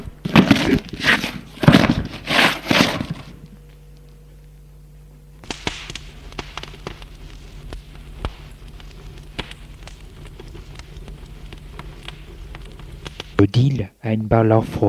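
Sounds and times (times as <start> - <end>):
fire crackling as books burn in a fireplace: 0.0 - 4.7, 5.3 - 13.8
speech: 13.4 - 14.8.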